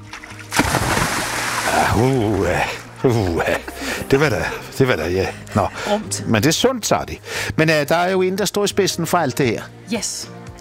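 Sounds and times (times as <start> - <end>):
person cannonballing into seawater: 0.1 - 2.4
laughter: 1.7 - 5.8
speech: 2.0 - 10.4.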